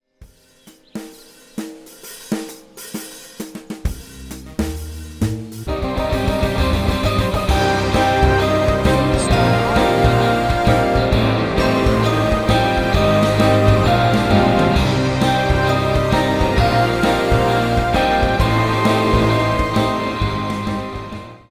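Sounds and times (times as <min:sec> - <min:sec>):
jingle music: 0:05.7 - 0:21.4.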